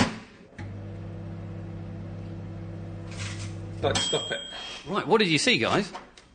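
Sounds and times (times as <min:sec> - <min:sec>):
microwave oven with a crisp packet inside humming: 0:00.5 - 0:03.9
speech: 0:03.8 - 0:06.3.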